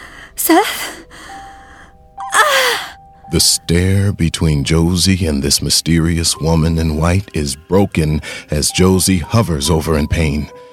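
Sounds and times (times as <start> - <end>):
frightened woman's loud breathy gasp: 0.0 - 3.0
faint steady tonal hum: 0.0 - 9.0
speech: 3.3 - 10.7.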